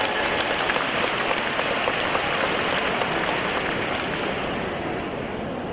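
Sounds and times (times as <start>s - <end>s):
applause from a large audience: 0.0s - 5.6s.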